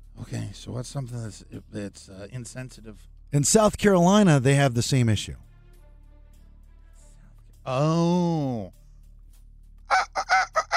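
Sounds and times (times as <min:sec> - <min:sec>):
speech: 0:00.3 - 0:05.5, 0:07.7 - 0:08.8
rooster crowing: 0:09.9 - 0:10.7.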